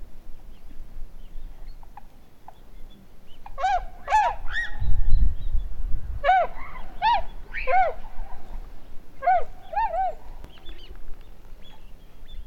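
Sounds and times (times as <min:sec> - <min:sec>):
wild bird honking in nasal double and single notes: 0:03.3 - 0:04.8, 0:06.2 - 0:08.6, 0:09.2 - 0:10.9.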